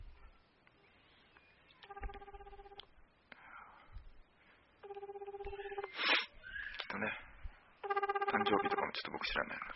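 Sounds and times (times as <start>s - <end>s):
low hiss: 0.0s - 9.7s
pulsing telephone ringback tone: 1.9s - 2.8s, 4.8s - 5.9s, 7.8s - 8.8s.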